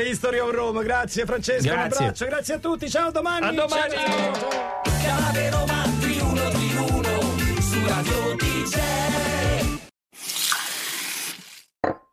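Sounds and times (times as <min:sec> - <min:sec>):
speech: 0:00.0 - 0:06.7, 0:07.8 - 0:09.8
upbeat music: 0:03.9 - 0:09.9
water gushing from a tap: 0:10.2 - 0:11.7.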